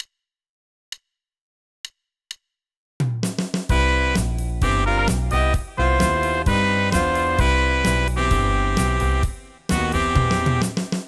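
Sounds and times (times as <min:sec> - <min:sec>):
jazz horn: 0:03.7 - 0:11.0.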